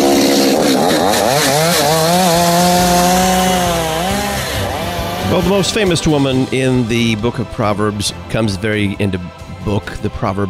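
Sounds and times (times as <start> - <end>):
chainsaw engine revving: 0.0 - 8.2
speech: 5.4 - 10.4.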